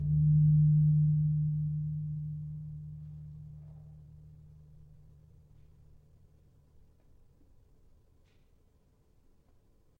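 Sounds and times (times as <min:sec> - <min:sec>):
gravity harps tuned: 0:00.0 - 0:05.7
gong in E: 0:00.0 - 0:06.7.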